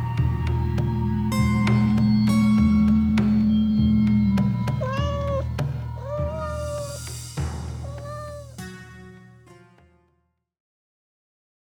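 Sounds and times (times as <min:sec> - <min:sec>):
low background hum: 0:00.0 - 0:07.1
cat meowing: 0:00.8 - 0:07.2, 0:07.8 - 0:08.6.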